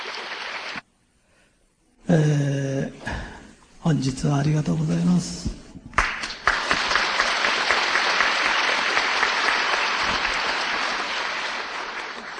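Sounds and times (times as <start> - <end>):
large audience applauding at a lecture event: 0.0 - 0.8, 6.0 - 12.3
speech: 2.1 - 2.6, 3.9 - 5.6.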